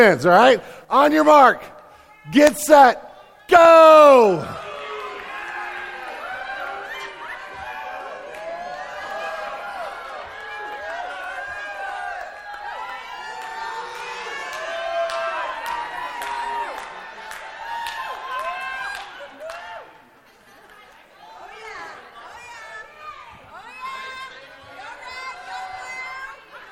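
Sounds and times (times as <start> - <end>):
speech: 0.0 - 4.6
children shouting and cheering for their team: 3.5 - 19.9.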